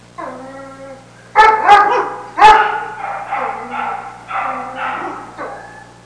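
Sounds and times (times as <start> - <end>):
dogs barking in a kennel: 1.3 - 6.0.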